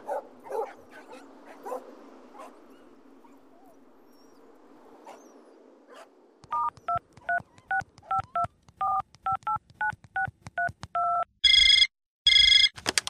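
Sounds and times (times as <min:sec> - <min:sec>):
dialing beeps: 0:06.5 - 0:12.7
telephone ringing in short electronic bursts: 0:11.0 - 0:12.8.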